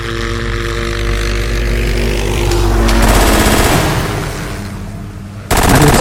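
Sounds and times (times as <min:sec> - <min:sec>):
loud steady engine drone: 0:00.0 - 0:05.9
bursts of machine gun fire: 0:03.0 - 0:04.2, 0:05.5 - 0:05.9.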